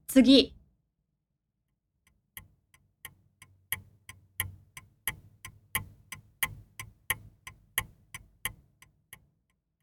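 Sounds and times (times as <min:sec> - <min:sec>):
speech: 0:00.1 - 0:00.6
clock ticking: 0:02.0 - 0:09.6.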